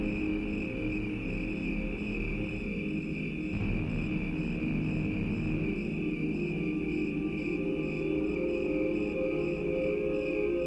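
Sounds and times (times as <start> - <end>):
low rumbling bed: 0.0 - 7.6
crickets chirping: 0.0 - 10.6
organ-like sustained tones: 0.0 - 10.6
synthesized drones: 0.0 - 10.6.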